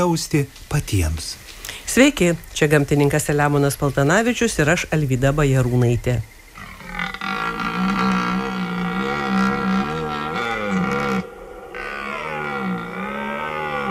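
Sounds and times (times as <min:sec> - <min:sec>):
speech: 0:00.0 - 0:06.4
red deer stags roaring during the rut: 0:06.6 - 0:13.8.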